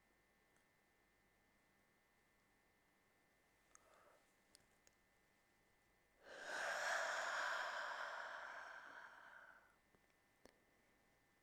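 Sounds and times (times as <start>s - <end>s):
long breathy deep yawn: 6.2s - 9.7s.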